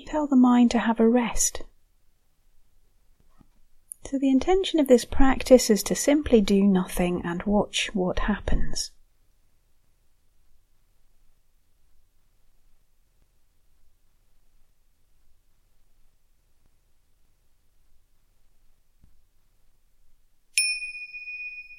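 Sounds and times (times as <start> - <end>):
speech: 0.1 - 1.7, 4.0 - 9.0
meditation bell ringing: 20.6 - 21.7.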